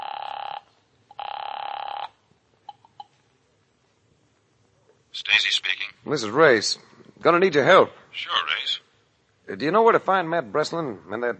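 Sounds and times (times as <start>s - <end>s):
telephone ringing on the line heard through a handset: 0.0s - 2.1s
speech: 5.4s - 8.8s, 9.5s - 11.3s.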